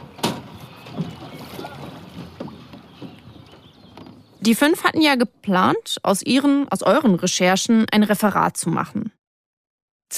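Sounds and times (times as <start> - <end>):
steady wash of river water: 0.0 - 4.4
rowing boat oars dipping and splashing on a river: 0.0 - 5.1
light wind: 0.0 - 5.2
speech: 4.4 - 9.2.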